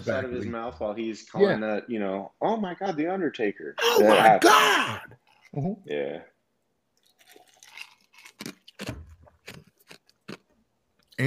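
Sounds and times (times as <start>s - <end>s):
speech: 0.0s - 6.3s
ice cube crunching in the mouth: 7.0s - 10.4s.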